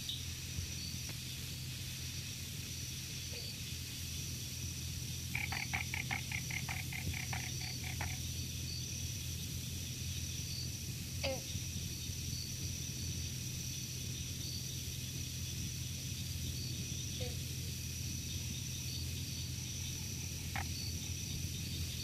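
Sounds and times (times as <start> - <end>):
background hiss and hum: 0.0 - 22.0
bronze frog twangy call: 5.3 - 8.2, 19.6 - 21.1
bog frog clucking: 5.3 - 8.3, 19.4 - 21.4.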